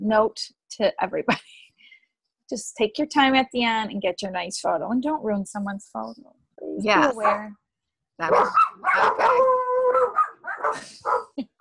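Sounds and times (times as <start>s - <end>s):
speech: 0.0s - 1.6s, 2.5s - 7.6s, 8.2s - 9.6s, 10.7s - 11.5s
dogs barking: 7.2s - 7.4s, 8.2s - 11.5s
dog howling: 8.3s - 11.2s.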